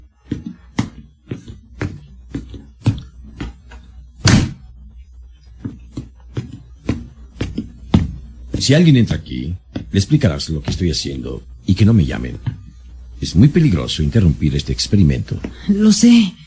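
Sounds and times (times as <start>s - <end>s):
dull thumps: 0.0s - 4.8s, 5.5s - 8.8s
low hum: 0.0s - 16.4s
door closing with a solid thud: 4.2s - 4.7s
speech: 8.6s - 12.6s, 13.2s - 16.4s.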